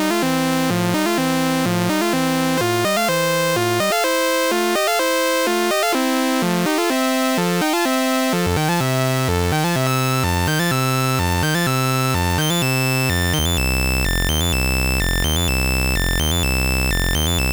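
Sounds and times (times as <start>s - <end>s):
DVCO synthesizer ramp sequence in thirds with octave switch: 0.1s - 17.5s.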